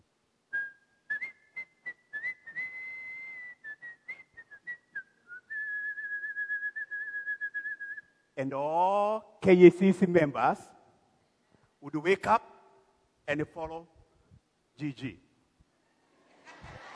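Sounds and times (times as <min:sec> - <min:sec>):
person whistling a wavering tune to call a shepherd: 0:00.5 - 0:08.1
speech: 0:08.4 - 0:10.8, 0:11.9 - 0:12.5, 0:13.3 - 0:14.0, 0:14.8 - 0:15.2.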